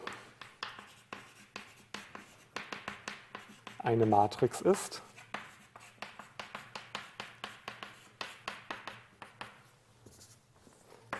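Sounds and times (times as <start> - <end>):
handwriting with pen or chalk: 0.0 - 11.1
speech: 3.8 - 5.1.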